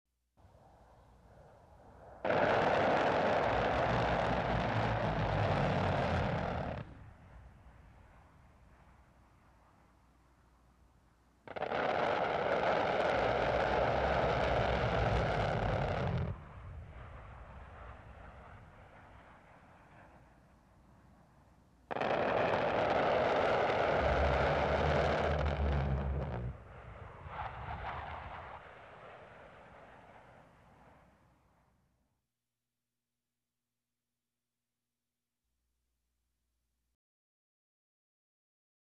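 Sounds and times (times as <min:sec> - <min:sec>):
noises: 0:00.6 - 0:09.2, 0:11.4 - 0:20.6, 0:21.9 - 0:29.8.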